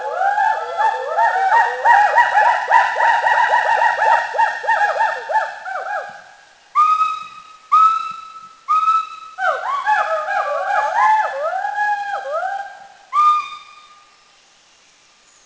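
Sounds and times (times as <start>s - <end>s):
Mishmi hoolock gibbon whooping calls in India: 0.0s - 6.2s, 6.8s - 14.0s.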